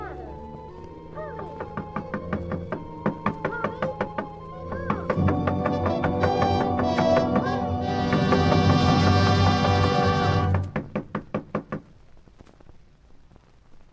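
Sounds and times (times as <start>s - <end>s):
rapid knocking on a door: 1.6s - 11.9s.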